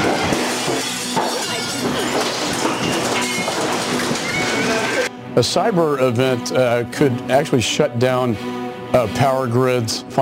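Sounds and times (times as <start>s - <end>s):
softball-sized hail pounding hard surfaces: 0.0s - 5.0s
glass shattering from large hail: 0.0s - 5.1s
speech: 5.4s - 10.2s.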